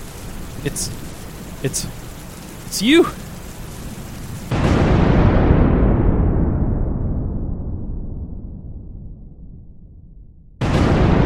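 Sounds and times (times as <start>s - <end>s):
sharp bursts: 0.0s - 4.5s
steady rain: 0.0s - 6.3s, 10.6s - 11.2s
low thunder rumble: 0.0s - 11.2s
speech: 0.6s - 2.0s, 2.7s - 3.2s.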